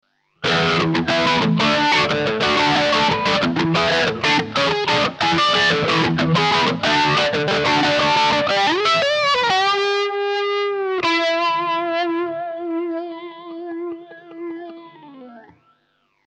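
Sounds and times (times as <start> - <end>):
MAXON PT9PRO+ effect pedal smooth and warm tone: 0.4 - 15.9.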